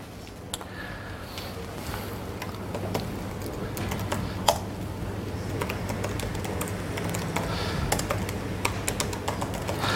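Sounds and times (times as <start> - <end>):
low hum: 0.0 - 9.9
typing text into a new WordPress page on a computer keyboard: 2.4 - 4.7, 5.4 - 9.9.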